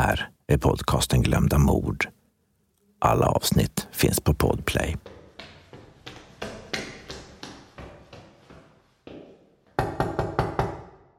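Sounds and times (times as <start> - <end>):
speech: 0.0 - 2.2, 3.0 - 5.1
knocking on an apartment door: 9.8 - 11.0.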